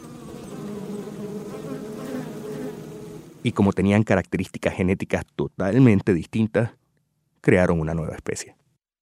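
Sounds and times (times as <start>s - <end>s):
dense swarm of bees buzzing: 0.0s - 3.6s
speech: 3.4s - 6.8s, 7.4s - 8.6s.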